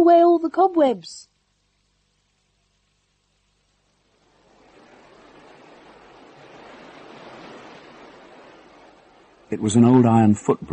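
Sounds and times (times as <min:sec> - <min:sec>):
speech: 0:00.0 - 0:01.3, 0:09.5 - 0:10.7
foaming river water rushing: 0:04.0 - 0:10.3.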